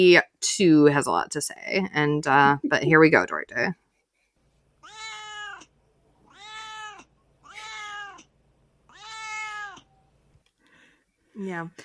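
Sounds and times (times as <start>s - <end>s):
speech: 0.0s - 3.8s, 11.4s - 11.8s
domestic cat meowing long and drawn out: 4.8s - 8.3s, 8.9s - 10.0s.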